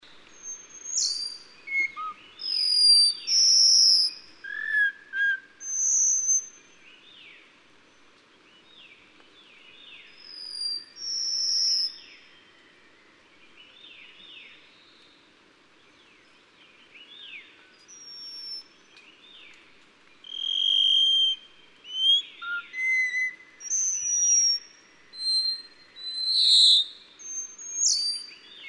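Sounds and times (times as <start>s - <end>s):
Taiwan whistling thrush calling: 0.4s - 6.5s, 20.2s - 28.6s.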